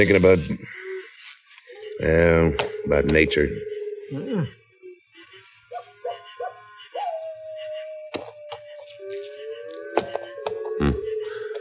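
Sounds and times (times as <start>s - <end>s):
speech: 0.0s - 0.7s, 2.0s - 4.6s
coyote howling at night: 0.0s - 11.5s
owl hooting at night: 0.0s - 11.5s.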